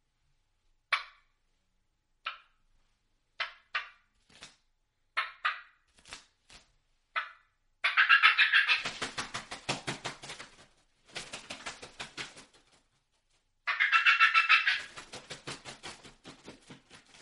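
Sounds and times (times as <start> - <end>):
turkeys cackling excitedly: 7.2 - 8.9, 13.7 - 15.0
turkey wingbeats flying down: 7.2 - 12.8, 13.7 - 17.1.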